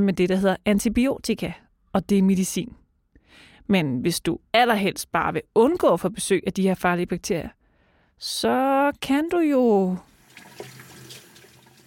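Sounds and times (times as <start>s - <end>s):
speech: 0.0s - 7.6s, 8.2s - 10.1s
water running from a tap: 10.0s - 11.8s.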